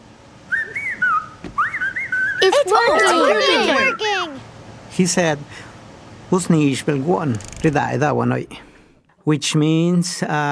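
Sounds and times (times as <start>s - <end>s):
person whistling melodic phrases: 0.5s - 2.5s
speech: 2.4s - 4.0s, 5.0s - 5.7s, 6.3s - 10.4s.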